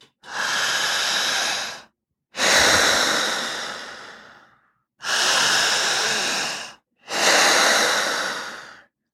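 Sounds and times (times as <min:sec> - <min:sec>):
heavy agitated breathing: 0:00.1 - 0:08.9.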